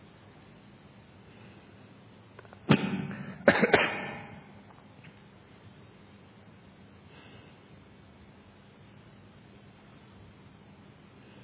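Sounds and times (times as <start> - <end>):
person coughing: 2.8 - 4.5.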